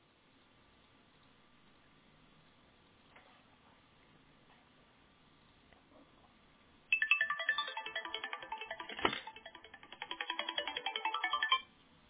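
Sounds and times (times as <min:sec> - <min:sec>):
phone ringtone from an incoming call playing an electronic melody: 0:06.9 - 0:11.7.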